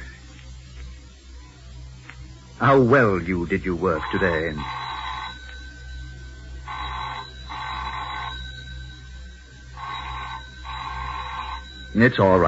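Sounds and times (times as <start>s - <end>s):
low steady hum: 0.0s - 12.4s
speech: 2.6s - 4.8s, 12.0s - 12.4s
telephone bell ringing in classic double-burst pattern: 3.8s - 12.4s.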